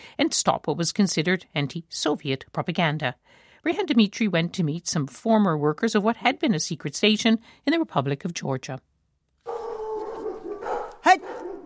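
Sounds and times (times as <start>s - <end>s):
speech: 0.2s - 8.9s
stray dogs whining and yelping outside a housing block in Georgia: 9.4s - 11.6s.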